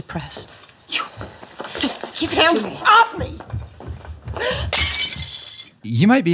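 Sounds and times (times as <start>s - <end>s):
speech: 0.0s - 3.5s, 4.4s - 4.9s, 5.8s - 6.3s
glass candy dish shattering: 4.7s - 5.8s
tinkling glass shards: 4.8s - 5.7s.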